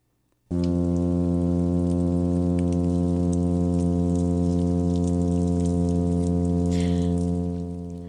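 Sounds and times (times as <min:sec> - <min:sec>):
male oyster toadfish courtship hum: 0:00.5 - 0:08.0.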